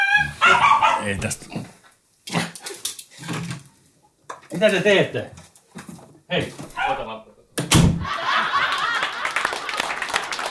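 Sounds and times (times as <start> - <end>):
dog whimpering in the room: 0.0 - 1.0
speech: 1.0 - 1.7, 4.6 - 5.4, 6.3 - 7.2
laughter: 8.0 - 10.4.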